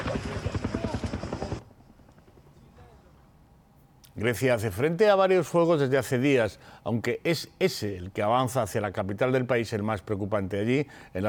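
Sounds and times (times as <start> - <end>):
rotor chopping from two firefighting helicopters: 0.0 - 3.0
speech: 4.2 - 11.2.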